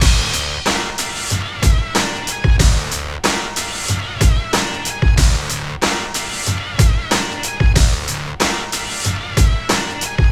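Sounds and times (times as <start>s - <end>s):
hard hip hop combo in D minor: 0.0s - 10.3s.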